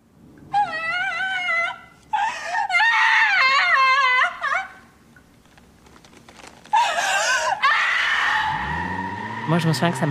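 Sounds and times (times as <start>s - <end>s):
actress in a TV series scene sobbing and wailing: 0.5s - 5.0s, 6.6s - 8.5s
speech: 9.5s - 10.0s.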